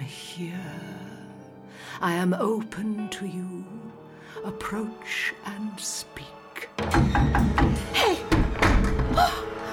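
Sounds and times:
speech: 0.4s - 1.1s, 2.0s - 8.3s
chair tipping over and hitting the floor: 6.8s - 9.4s.

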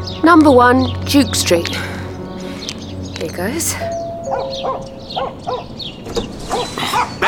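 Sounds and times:
speech: 0.2s - 2.0s, 3.2s - 7.2s
dog barking: 4.3s - 5.8s, 6.5s - 7.2s.

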